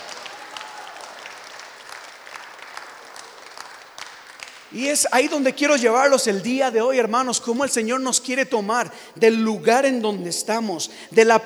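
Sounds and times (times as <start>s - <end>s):
congregation applauding: 0.0s - 7.0s
speech: 4.7s - 11.4s.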